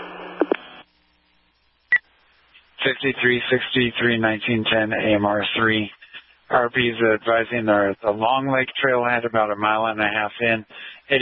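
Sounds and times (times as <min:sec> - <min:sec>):
short burst of radio static with clicks: 0:00.0 - 0:04.0, 0:04.7 - 0:08.0
speech: 0:02.8 - 0:11.1.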